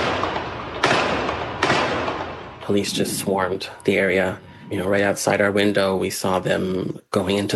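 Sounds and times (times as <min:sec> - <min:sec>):
sharp gunshots: 0:00.0 - 0:03.5
steady wash of noise: 0:00.0 - 0:07.5
speech: 0:02.7 - 0:07.5.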